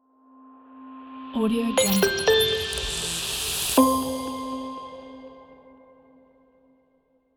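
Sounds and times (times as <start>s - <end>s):
commercial logo jingle: 1.8s - 5.6s.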